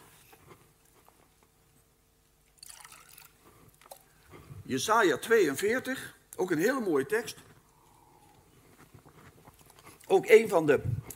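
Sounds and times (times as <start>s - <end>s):
little water poured in a quiet trickle: 2.6s - 4.1s
speech: 4.7s - 7.4s, 10.1s - 11.0s.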